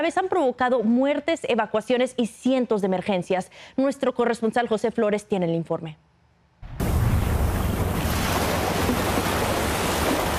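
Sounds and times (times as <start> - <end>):
speech: 0.0 - 6.1
storm ocean waves surging onto the Pacific coast of Guatemala: 6.8 - 10.3.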